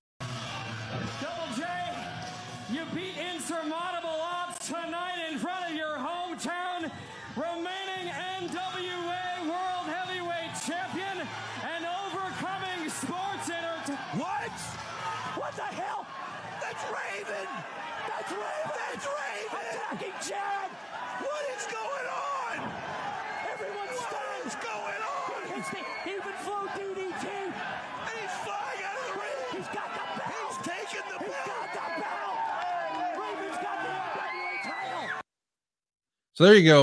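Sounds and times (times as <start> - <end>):
large arena crowd roaring and cheering: 0.2 - 35.3
speech: 1.0 - 1.9, 2.7 - 9.2, 36.4 - 36.8
overlapping shouts, whoops and yells: 6.5 - 35.2
rhythmic crowd chant: 9.4 - 34.4.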